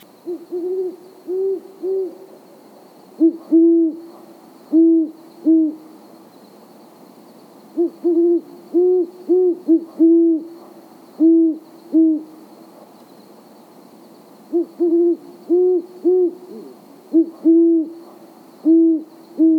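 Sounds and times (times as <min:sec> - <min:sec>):
great horned owl hooting: 0:00.2 - 0:02.4, 0:03.2 - 0:05.9, 0:07.8 - 0:12.3, 0:14.5 - 0:19.5.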